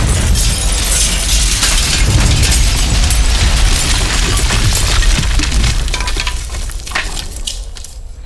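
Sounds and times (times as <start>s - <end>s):
loud roaring explosion with deep rumbling and crackling: 0.0s - 6.3s
falling debris: 0.0s - 8.2s.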